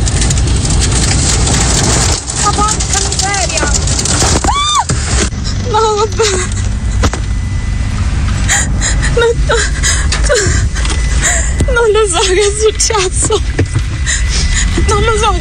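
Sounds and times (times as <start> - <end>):
heavy rain from a tornado pounding a car with burst windows: 0.0 - 15.4
roaring tornado wind: 0.0 - 15.4
young woman crying: 5.4 - 7.0, 8.4 - 15.3
speech: 6.1 - 6.6, 9.2 - 10.7, 11.7 - 15.4.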